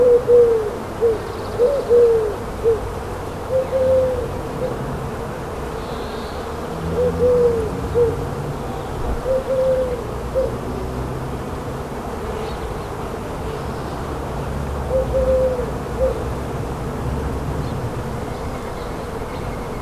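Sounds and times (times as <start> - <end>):
dove giving soft low coos: 0.0 - 5.0, 6.8 - 8.4, 9.1 - 10.8, 14.8 - 16.5
faint buzzing insects: 0.0 - 19.8
steady background hiss: 0.0 - 19.8.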